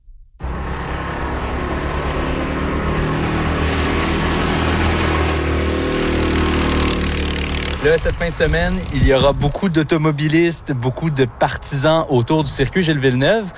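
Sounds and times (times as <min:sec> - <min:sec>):
go-kart engines droning at a karting track in Magog: 0:00.4 - 0:09.1
speech: 0:07.8 - 0:13.5.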